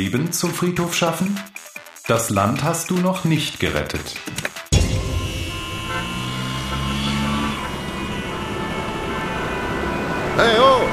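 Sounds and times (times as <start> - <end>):
speech: 0.0 - 4.4, 10.4 - 10.9
steady rumble of car engines in a traffic jam: 2.5 - 10.9
street noise in Paris: 2.9 - 10.9
car horns honking in a traffic jam in Paris: 4.6 - 10.9.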